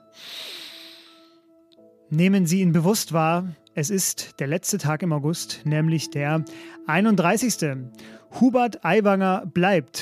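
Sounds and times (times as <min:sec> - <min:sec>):
deep inhale through the nose: 0:00.0 - 0:01.4
speech: 0:02.1 - 0:09.9.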